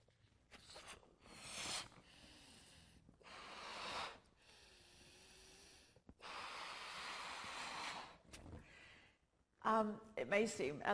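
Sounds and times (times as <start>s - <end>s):
breath forcefully blown into a balloon: 0.5s - 8.4s
speech: 9.7s - 10.9s.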